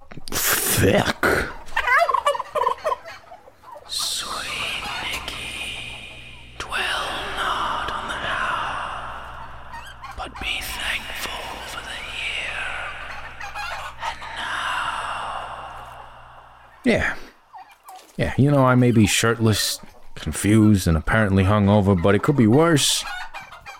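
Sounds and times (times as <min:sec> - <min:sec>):
steady low hum: 0:00.0 - 0:23.7
turkeys gobbling: 0:00.0 - 0:23.7
speech: 0:00.8 - 0:01.6, 0:18.4 - 0:23.1.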